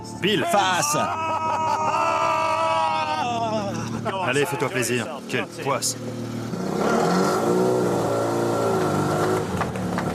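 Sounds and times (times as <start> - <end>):
speech: 0.2 - 2.0, 4.0 - 8.0
laughter: 0.3 - 5.5
Sebring Sprite sports car engine revving: 5.9 - 10.1.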